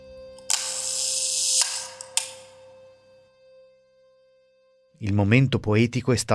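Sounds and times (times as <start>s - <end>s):
camera shutter being released: 0.4s - 2.7s
speech: 5.0s - 6.3s.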